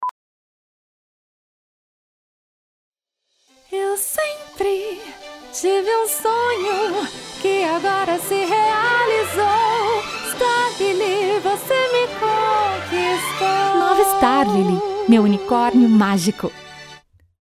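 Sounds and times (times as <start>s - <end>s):
person singing: 3.7s - 16.0s.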